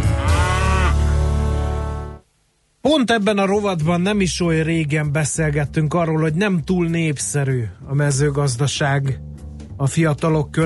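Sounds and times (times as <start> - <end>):
cow mooing: 0.0 - 2.0
speech: 2.9 - 10.6.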